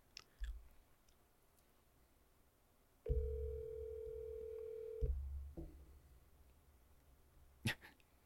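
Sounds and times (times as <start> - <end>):
electronic ringback tone from a phone call: 3.1 - 5.1.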